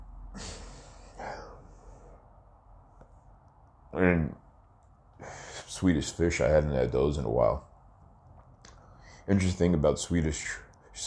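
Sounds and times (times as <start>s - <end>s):
low hum: 0.0s - 11.0s
heavy strained labored breathing: 0.3s - 2.3s, 5.2s - 5.8s
speech: 4.0s - 4.4s, 5.8s - 7.7s, 9.3s - 11.0s.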